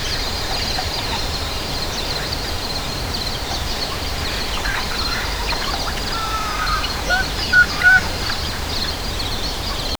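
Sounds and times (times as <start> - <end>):
peaceful river: 0.0 - 9.8.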